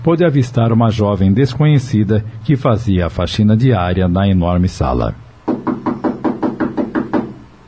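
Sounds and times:
speech: 0.0s - 5.8s
gentle rapid knocking on the open door of a house: 5.5s - 7.4s.

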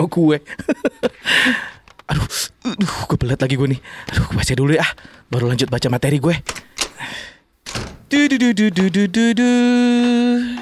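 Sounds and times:
speech: 0.0s - 7.3s, 8.1s - 10.6s
laughter: 0.4s - 1.8s
bedroom door closing with dull thumps: 6.5s - 8.3s.

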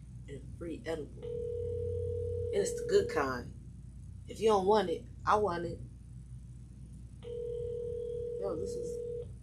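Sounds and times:
low hum: 0.0s - 9.4s
speech: 0.3s - 1.7s, 2.5s - 3.6s, 4.3s - 5.9s, 8.4s - 9.0s
telephone ring tone through a phone line: 1.2s - 3.2s, 7.2s - 9.3s.

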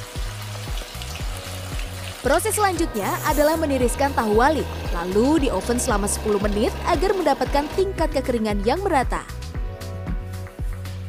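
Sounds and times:
battered tofu crackling and sizzling while deep-frying in hot oil: 0.0s - 6.8s
speech: 2.2s - 9.4s
low droning bass rumble: 3.6s - 8.4s.

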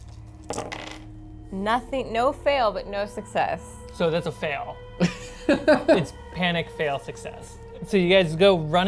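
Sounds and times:
dice rolled for a mobility check clattering across a hard surface: 0.4s - 1.1s
speech: 1.5s - 8.8s.

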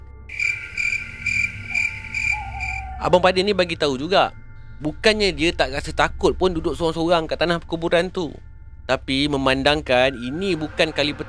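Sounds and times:
crickets chirping at night in a village cemetery: 0.3s - 4.7s
speech: 3.0s - 11.2s.

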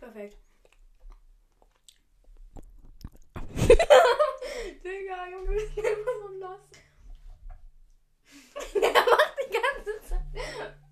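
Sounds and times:
speech: 0.2s - 0.5s, 4.8s - 6.8s
chewing gum: 0.4s - 3.5s
mouth smacking clicks: 0.6s - 3.5s
laughter: 8.6s - 10.8s.

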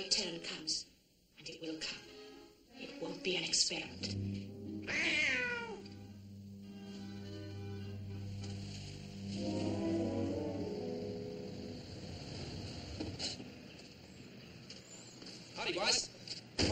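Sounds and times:
speech: 0.0s - 5.8s
steady low hum: 0.0s - 15.3s
cat meowing: 4.8s - 5.9s.

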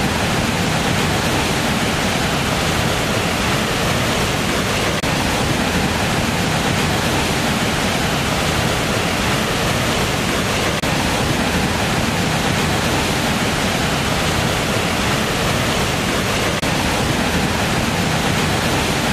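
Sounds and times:
waterfall roaring: 0.0s - 19.1s.

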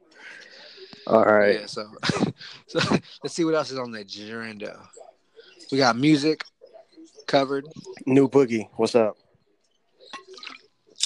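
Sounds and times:
speech: 1.1s - 5.0s, 5.7s - 6.5s, 7.3s - 9.2s
person drinking from a water bottle: 10.0s - 11.0s.

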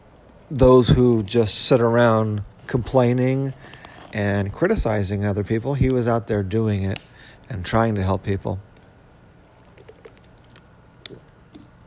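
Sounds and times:
low hiss: 0.0s - 11.8s
speech: 0.5s - 8.7s
sipping and swallowing water: 8.7s - 11.8s
water pouring: 9.5s - 11.3s.

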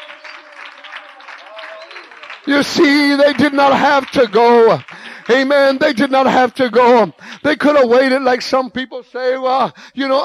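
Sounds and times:
audience applauding: 0.0s - 7.4s
speech: 2.4s - 10.2s.

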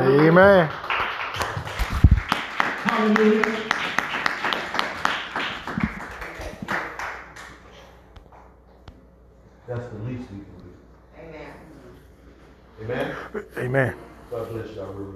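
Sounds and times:
audience clapping hands: 0.0s - 8.0s
speech: 0.1s - 0.9s, 2.9s - 3.8s, 12.8s - 15.1s.

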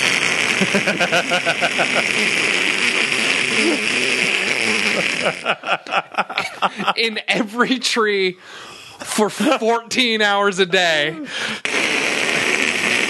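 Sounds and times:
voice imitating a dense swarm of buzzing insects: 0.0s - 5.9s, 11.6s - 13.0s
laughter: 0.6s - 2.4s, 3.4s - 7.8s
speech: 0.6s - 2.7s, 3.6s - 4.2s, 5.0s - 11.7s.

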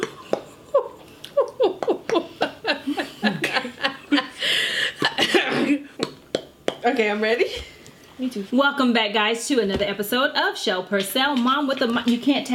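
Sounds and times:
laughter: 0.0s - 5.5s
harsh coughing: 4.9s - 6.0s
speech: 7.0s - 12.5s.

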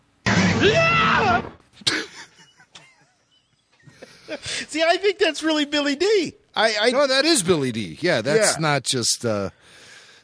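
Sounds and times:
sharp thud: 0.3s - 1.6s
man screaming: 0.4s - 1.6s
speech: 0.6s - 0.9s, 4.3s - 9.8s.

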